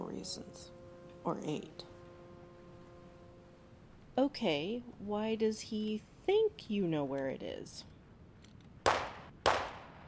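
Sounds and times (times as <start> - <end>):
speech: 0.2 - 1.9, 4.2 - 7.9
faint gunshots: 8.9 - 10.0.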